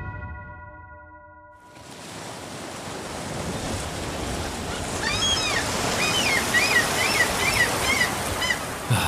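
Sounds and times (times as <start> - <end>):
steady ocean surf: 1.7 - 9.0
seagulls crying: 4.5 - 9.0.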